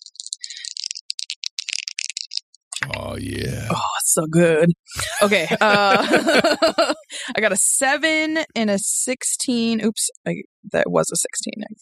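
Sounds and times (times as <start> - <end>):
dice rattling as they are rolled for attack rolls in a tabletop roleplaying game: 0.0 - 2.4
laughter: 2.8 - 3.8, 4.9 - 8.4
speech: 2.8 - 11.7.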